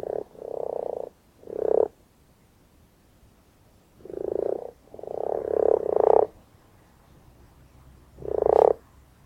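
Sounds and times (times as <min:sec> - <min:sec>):
common frog croaking: 0:00.0 - 0:02.0, 0:04.0 - 0:06.4, 0:08.2 - 0:08.8.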